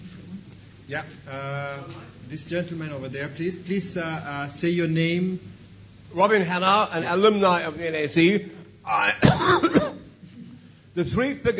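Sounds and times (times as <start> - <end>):
speech: 0.9 - 9.8, 11.0 - 11.5
man in a lecture audience coughing: 8.9 - 10.2.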